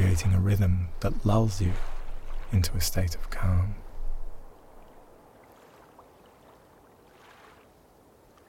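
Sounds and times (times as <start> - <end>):
water lapping at a shoreline: 0.0 - 8.4
speech: 0.2 - 3.8.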